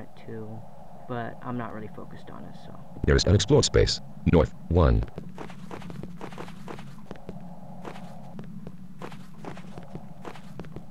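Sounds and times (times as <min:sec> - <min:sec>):
constant low noise: 0:00.0 - 0:10.9
speech: 0:00.1 - 0:05.6
footsteps of a character walking in a video game: 0:05.0 - 0:10.9.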